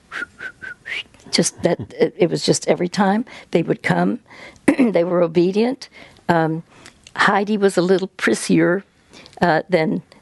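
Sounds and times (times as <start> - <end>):
person whistling to call cats: 0.1 - 1.1
speech: 1.4 - 10.1.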